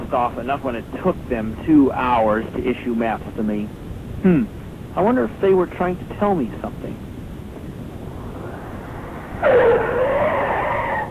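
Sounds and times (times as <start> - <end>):
car engine rumble: 0.0 - 11.0
speech: 0.1 - 7.1, 9.4 - 9.8
car tires skidding: 8.1 - 11.0.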